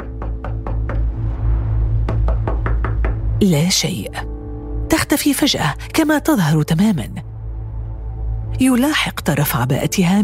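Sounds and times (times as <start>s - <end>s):
knocking on the wooden door of a house: 0.0s - 1.2s, 2.0s - 3.4s
speech: 3.4s - 4.3s, 5.0s - 7.2s, 8.6s - 10.2s.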